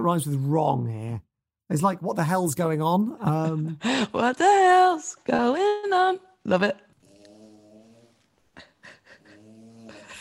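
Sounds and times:
speech: 0:00.0 - 0:06.8
dog snoring: 0:07.0 - 0:08.4, 0:09.1 - 0:10.1.

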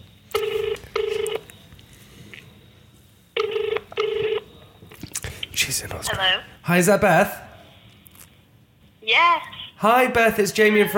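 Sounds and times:
mobile phone ringback tone on an outgoing call to Australia: 0:00.3 - 0:01.4, 0:03.4 - 0:04.5
speech: 0:05.6 - 0:07.4, 0:09.8 - 0:10.9.

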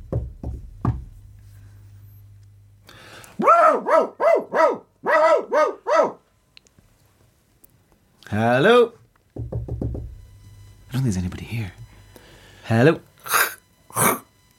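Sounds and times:
knocking on a door: 0:00.0 - 0:01.2, 0:09.4 - 0:10.3
low hum: 0:00.0 - 0:04.0, 0:09.4 - 0:14.5
dog barking loudly: 0:03.4 - 0:06.2
speech: 0:08.4 - 0:09.0, 0:11.0 - 0:11.8, 0:12.7 - 0:13.1.

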